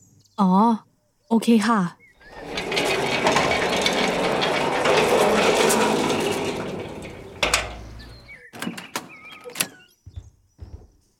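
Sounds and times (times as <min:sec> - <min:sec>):
speech: 0:00.4 - 0:02.0
door opening with a solid clunk: 0:02.3 - 0:09.8.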